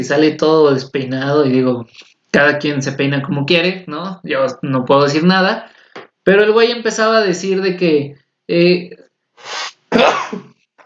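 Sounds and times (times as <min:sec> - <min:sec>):
speech: 0:00.0 - 0:05.7, 0:06.3 - 0:10.5
person sneezing: 0:09.4 - 0:10.6.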